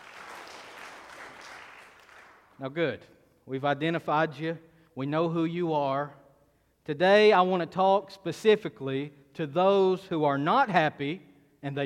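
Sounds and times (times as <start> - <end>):
crowd clapping: 0.0 - 2.6
speech: 2.6 - 6.2, 6.9 - 11.8.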